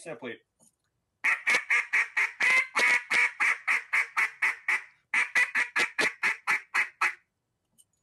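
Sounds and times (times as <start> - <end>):
speech: 0.0 - 0.7
goose call for goose hunting blown in sharp fast cadence: 1.2 - 7.2.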